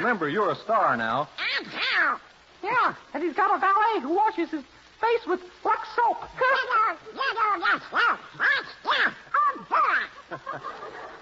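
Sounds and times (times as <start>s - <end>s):
speech: 0.0s - 11.2s
human voice imitating a cartoon duck quacking and squawking: 1.4s - 2.2s, 6.4s - 10.3s
laughter: 9.4s - 11.2s.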